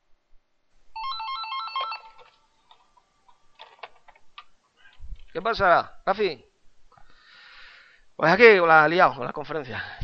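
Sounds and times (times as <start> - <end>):
phone ringing with warbling electronic tones: 1.0 - 2.8
handling noises: 1.7 - 5.6
speech: 5.4 - 6.5, 8.2 - 10.0.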